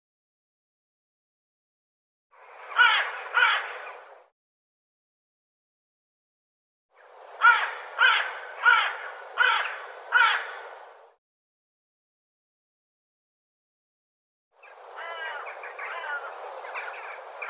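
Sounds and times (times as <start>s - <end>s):
bird calling raspy notes: 2.4s - 4.1s, 7.0s - 10.8s, 14.6s - 17.4s.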